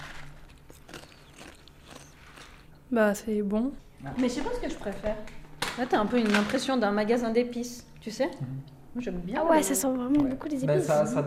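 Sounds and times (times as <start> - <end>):
chewing crunchy tandoori-flavoured insect snack from a Swiss insect farm: 0.0 - 2.7
speech: 2.9 - 11.2.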